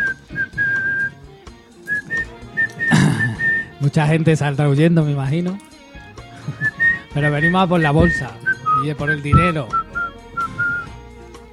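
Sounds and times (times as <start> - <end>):
person whistling a tune: 0.0 - 1.2, 1.9 - 3.8, 6.4 - 11.0
speech: 3.8 - 5.7, 7.2 - 9.8.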